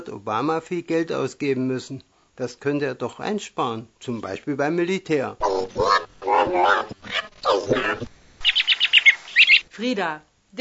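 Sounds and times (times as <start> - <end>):
speech: 0.1 - 8.1, 9.8 - 10.5
bird crowing loudly in harsh calls: 5.4 - 9.7
short sharp bird chirps: 7.2 - 9.6.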